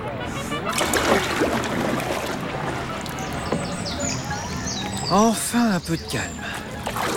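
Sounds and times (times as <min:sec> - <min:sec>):
water lapping against the hull of a small boat on a shallow lake: 0:00.5 - 0:05.4, 0:06.0 - 0:07.1
water drips and gurgles: 0:00.6 - 0:05.6, 0:06.4 - 0:07.1
speech: 0:05.1 - 0:06.4.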